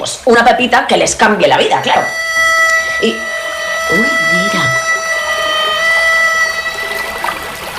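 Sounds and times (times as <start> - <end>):
watery hiss: 0.0 - 7.7
speech: 0.2 - 2.2, 3.0 - 3.3, 3.9 - 4.6
harmonica holding a long steady reedy note: 1.6 - 7.7.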